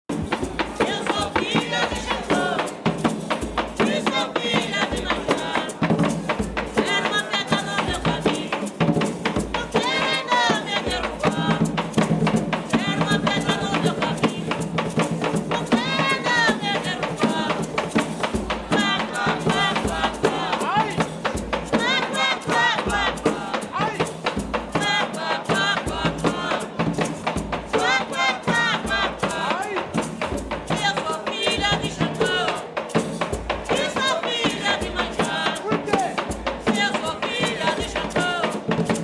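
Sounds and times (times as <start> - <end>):
batuque de umbigada drumming and singing: 0.1 - 39.0.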